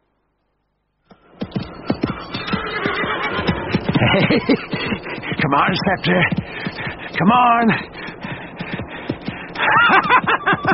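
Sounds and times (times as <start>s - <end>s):
galloping hoofbeats: 1.1s - 10.7s
horse neighing: 1.4s - 5.9s
laughter: 2.7s - 10.7s
speech: 4.2s - 4.6s, 5.5s - 6.4s, 7.2s - 7.9s.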